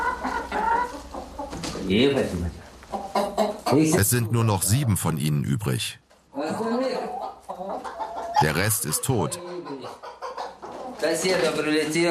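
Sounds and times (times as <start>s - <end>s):
chickens clucking in a coop: 0.0s - 5.8s, 6.4s - 11.9s
speech: 1.8s - 2.6s, 3.7s - 6.6s, 8.4s - 9.5s, 11.0s - 12.1s.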